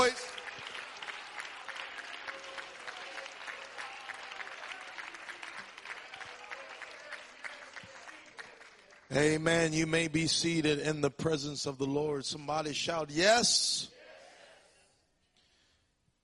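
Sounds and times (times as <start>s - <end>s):
audience at a worship service clapping: 0.0s - 10.2s
speech: 9.2s - 13.9s.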